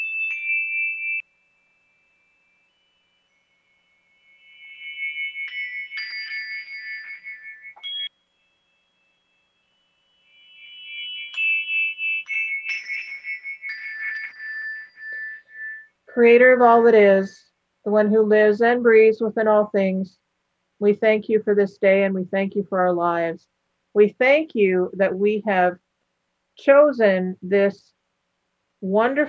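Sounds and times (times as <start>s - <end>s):
high-register shimmering meditative tones: 0.0s - 19.6s
speech: 16.2s - 20.2s, 20.8s - 25.8s, 26.6s - 28.0s, 28.8s - 29.2s.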